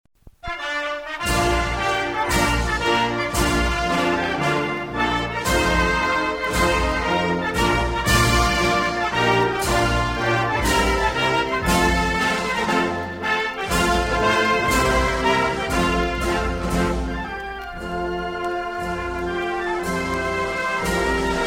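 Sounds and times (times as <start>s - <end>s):
Belgian folk song: 0.3s - 21.4s.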